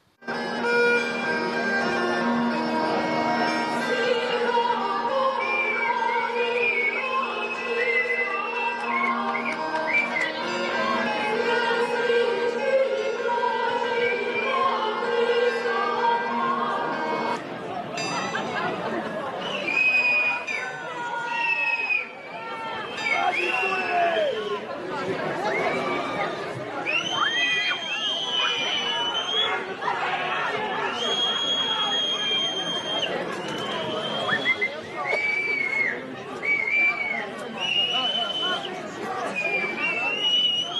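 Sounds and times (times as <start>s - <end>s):
steady murmur of crowd voices: 0.0s - 40.7s
dense protesting crowd whistling loudly: 5.4s - 11.1s, 19.3s - 40.7s.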